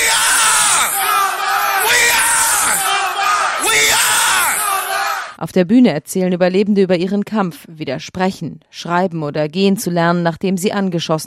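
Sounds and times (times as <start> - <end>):
crowd shouting a school battle cry at a memorial ceremony: 0.0 - 5.4
speech: 5.4 - 11.2.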